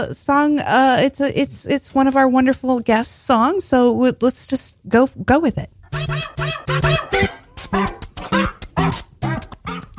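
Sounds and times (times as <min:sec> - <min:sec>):
speech: 0:00.0 - 0:07.0
dog barking and yipping: 0:06.0 - 0:09.0.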